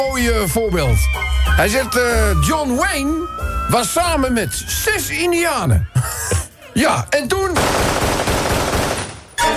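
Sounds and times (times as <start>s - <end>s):
speech: 0.0s - 8.1s
laughter: 5.7s - 6.8s
rapid gunfire sound effect: 7.5s - 9.4s.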